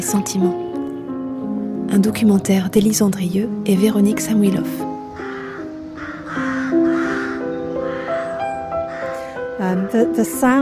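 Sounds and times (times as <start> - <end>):
speech: 0.0 - 0.7, 1.9 - 4.9, 9.7 - 10.6
chorus of rooks cawing: 4.8 - 9.6.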